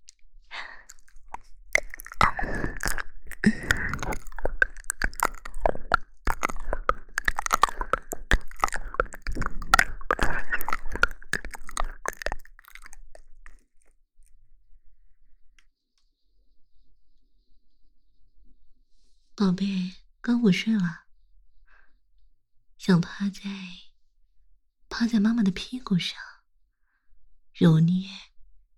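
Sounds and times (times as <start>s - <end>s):
wet chewing of a breakfast meal: 0.0s - 14.3s
speech: 19.6s - 21.0s, 22.9s - 23.8s, 25.0s - 26.2s, 27.6s - 28.3s.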